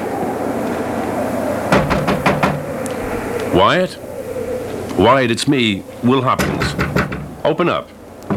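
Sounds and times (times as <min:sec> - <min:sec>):
brief rising voice-like sound: 0:00.0 - 0:06.6
steady low hum: 0:00.0 - 0:08.3
quick firm knocks on a door: 0:01.7 - 0:02.6, 0:06.7 - 0:07.3
speech: 0:03.6 - 0:04.1, 0:05.0 - 0:08.0.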